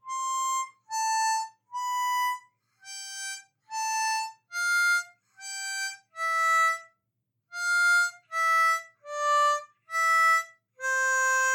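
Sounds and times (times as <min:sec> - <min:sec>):
couplets in C major: 0:00.0 - 0:06.9, 0:07.5 - 0:11.5.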